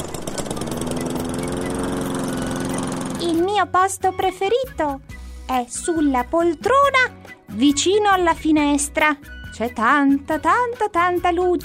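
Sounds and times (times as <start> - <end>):
lawn mower engine running: 0.0 - 3.5
speech: 3.2 - 11.6.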